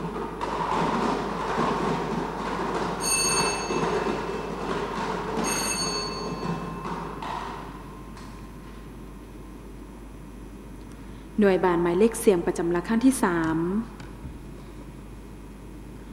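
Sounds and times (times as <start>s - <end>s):
lottery number drum being spun during a prize draw: 0.0s - 7.8s
high metallic rings: 3.0s - 8.2s
speech: 11.4s - 14.0s.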